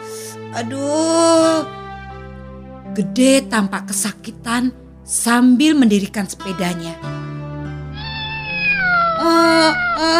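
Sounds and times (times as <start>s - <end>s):
speech: 0.5s - 1.8s, 3.0s - 7.2s, 9.2s - 10.1s
injured kitten meowing in pain: 7.9s - 10.1s.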